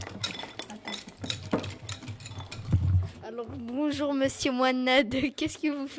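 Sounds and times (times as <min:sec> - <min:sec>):
whisk clinking against a bowl mixing chocolate for a brownie: 0:00.0 - 0:02.7
speech: 0:03.4 - 0:05.9.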